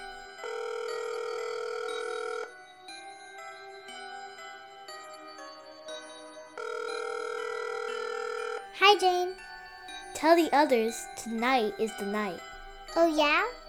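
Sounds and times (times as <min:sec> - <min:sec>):
electronic telephone call ringing tones: 0:00.0 - 0:02.6, 0:06.6 - 0:09.1
speech: 0:08.8 - 0:09.5, 0:10.2 - 0:13.6.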